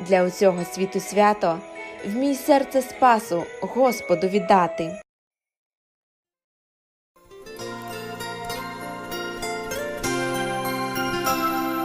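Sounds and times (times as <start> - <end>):
Christmas bells chiming: 0.0 - 5.0, 7.6 - 11.8
speech: 0.1 - 5.0.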